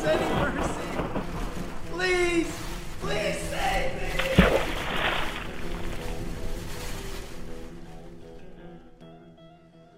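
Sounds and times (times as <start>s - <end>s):
stormy sea waves roaring and crashing: 0.0s - 8.0s.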